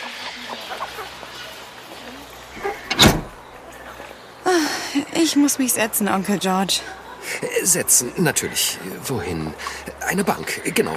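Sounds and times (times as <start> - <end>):
door opening to the outside in London: 2.6 - 3.6
speech: 5.2 - 10.9.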